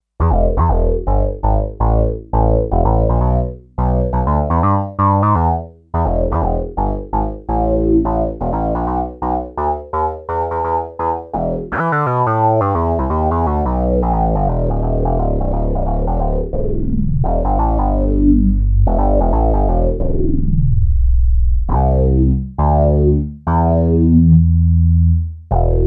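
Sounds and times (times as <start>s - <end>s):
unison synth bass on a Sequential Circuits Six-Trak: 0.1s - 25.8s.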